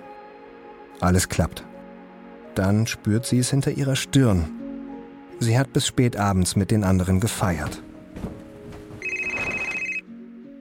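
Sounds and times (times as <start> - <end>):
speech: 1.0 - 1.7, 2.6 - 4.6, 5.4 - 8.3
telephone ringing with a trilling electronic bell: 9.0 - 10.1.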